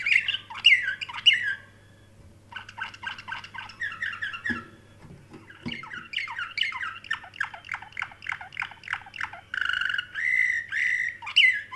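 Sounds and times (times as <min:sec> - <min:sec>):
canary warbling song: 0:00.0 - 0:11.7
steady background hum: 0:00.0 - 0:11.7.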